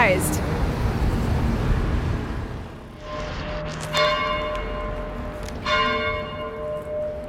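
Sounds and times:
city traffic noise in Rome: 0.0 - 7.2
church bells ringing at noon in Piazza Collegio Romano, Rome: 3.0 - 7.2.

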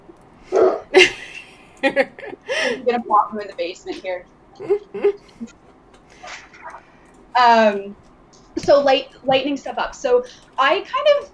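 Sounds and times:
dog barking in sharp loud woofs: 0.5 - 0.9
speech: 1.8 - 5.6, 7.4 - 8.0, 8.6 - 11.3.

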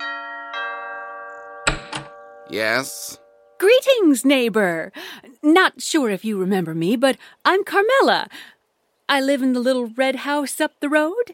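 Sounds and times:
two-tone doorbell of a big gray house chiming: 0.0 - 2.6
speech: 2.5 - 11.3.

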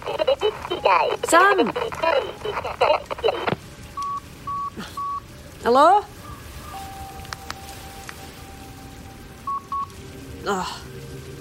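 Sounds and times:
hissy crackling phone line: 0.0 - 11.4
speech: 0.9 - 3.6, 5.6 - 6.2, 10.4 - 10.9
short beeping phone tones of a dropped call: 4.0 - 5.2.

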